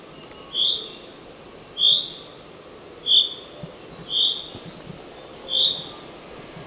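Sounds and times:
Common chaffinch Fringilla coelebs high call notes: 0.1 - 1.1, 1.8 - 2.4, 3.0 - 4.6, 5.2 - 6.1.

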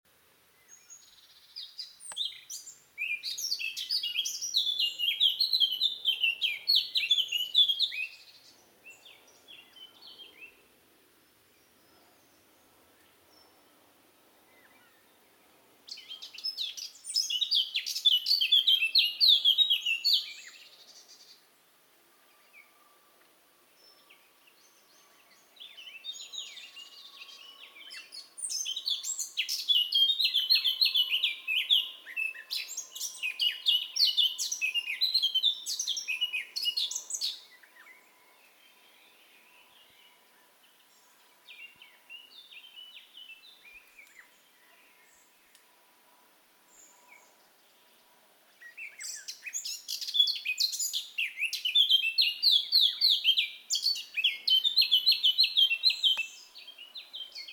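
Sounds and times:
Sylvia atricapilla singing: 1.0 - 8.3, 15.9 - 20.7, 25.6 - 37.9, 48.6 - 57.5.

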